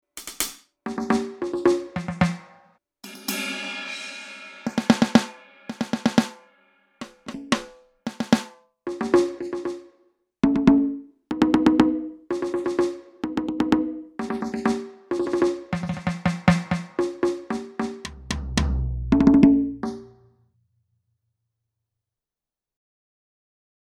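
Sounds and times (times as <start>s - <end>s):
drum kit: 0.0s - 9.8s, 11.3s - 20.2s.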